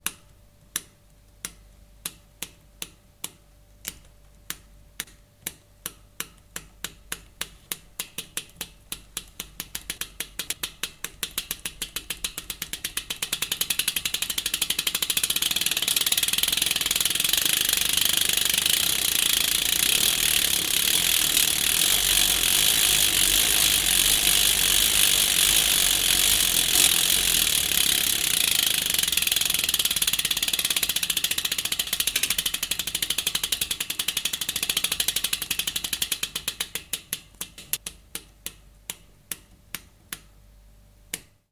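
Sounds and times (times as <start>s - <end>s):
mountain bike freewheel ticking: 9.7s - 37.2s.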